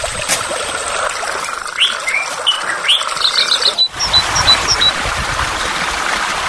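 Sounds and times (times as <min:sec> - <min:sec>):
water rushing at a natural site with waterfalls, streams and natural pools: 0:00.0 - 0:06.4
birds chirping and trilling: 0:01.6 - 0:05.0.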